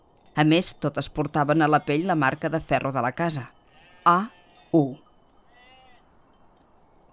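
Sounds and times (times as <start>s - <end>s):
steady hiss of outdoor noise: 0.0s - 7.1s
speech: 0.4s - 5.0s
single sheep bleating: 3.7s - 4.8s, 5.5s - 6.0s.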